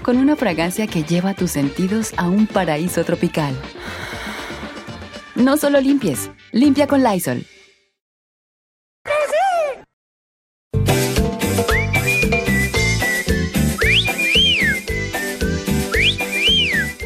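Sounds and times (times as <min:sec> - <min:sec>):
speech: 0:00.1 - 0:04.3, 0:05.4 - 0:07.5
loud rhythmic music with a steady beat: 0:10.8 - 0:17.0
person whistling a short rising-and-falling call: 0:11.6 - 0:17.0.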